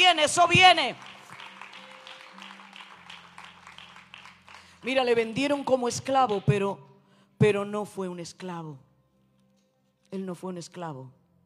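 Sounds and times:
speech: 0.1s - 1.2s, 4.8s - 8.8s, 10.1s - 11.2s
audience applauding: 0.4s - 5.0s.

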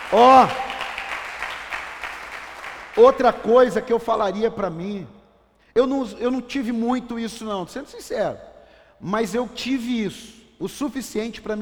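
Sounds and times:
audience applause: 0.0s - 3.2s
speech: 0.1s - 0.7s, 3.0s - 5.2s, 5.8s - 11.5s.

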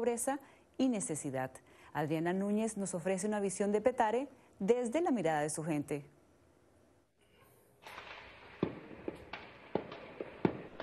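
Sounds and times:
speech: 0.0s - 6.2s
gunshots at night: 7.8s - 10.8s.

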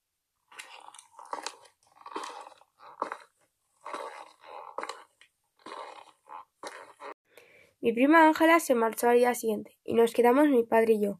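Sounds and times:
squelching footsteps of boots caked in mud: 0.5s - 7.2s
speech: 7.8s - 11.1s.

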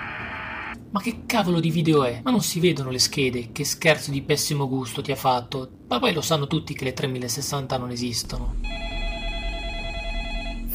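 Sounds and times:
speech: 0.9s - 8.9s
telephone ringing: 8.6s - 10.7s.

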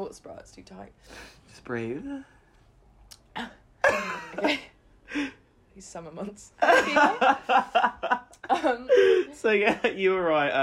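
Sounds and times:
speech: 0.0s - 2.4s, 3.4s - 10.6s
person coughing and gagging, choking on a gulp of lager: 3.3s - 4.7s
laughter: 3.8s - 5.3s, 6.6s - 10.0s.

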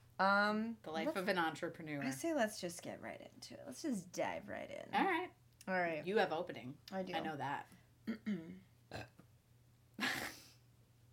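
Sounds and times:
speech: 0.2s - 9.2s
low croaky burp: 8.1s - 9.3s.

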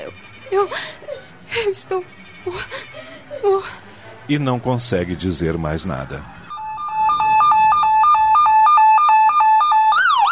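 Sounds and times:
speech: 0.1s - 6.4s
ambulance siren in two-tone hi-lo pattern and wail: 5.1s - 10.3s.

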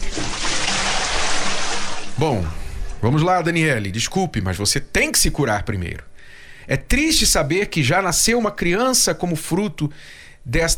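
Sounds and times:
bucket of water being emptied: 0.0s - 3.0s
speech: 2.2s - 6.1s, 6.7s - 10.7s.

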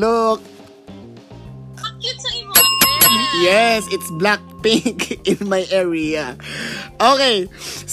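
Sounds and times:
speech: 0.0s - 0.5s, 3.4s - 7.9s
bright bell ringing: 2.6s - 5.5s.

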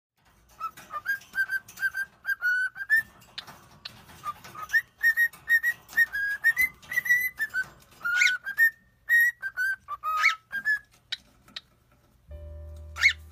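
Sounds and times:
female pet bird whistling a melodic tune taught by its owner: 0.6s - 3.2s, 4.2s - 10.9s, 12.3s - 13.2s
brief low hum: 12.3s - 13.2s.

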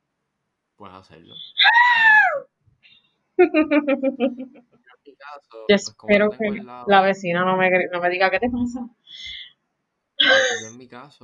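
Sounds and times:
speech: 0.8s - 2.6s, 3.4s - 9.4s, 10.2s - 11.2s
woman screaming in mortal terror: 1.4s - 2.5s, 10.2s - 10.7s
laughter: 3.4s - 4.8s.

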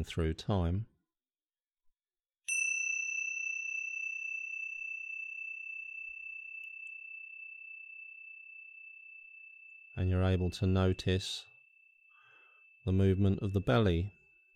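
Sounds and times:
speech: 0.0s - 0.9s, 10.0s - 11.5s, 12.8s - 14.2s
single bell ringing with a clear high tone: 2.5s - 14.5s.

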